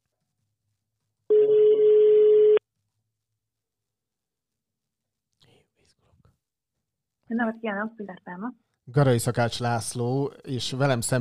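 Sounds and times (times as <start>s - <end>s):
outgoing phone call ringback tone: 1.3s - 2.6s
speech: 7.3s - 11.1s.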